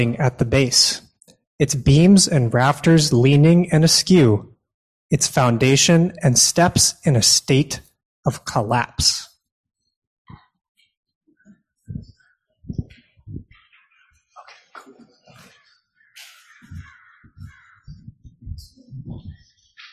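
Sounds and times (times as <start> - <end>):
speech: 0.0 - 1.0, 1.6 - 4.5, 5.1 - 9.3
bird chatter: 12.1 - 19.9
crows cawing: 15.5 - 18.0.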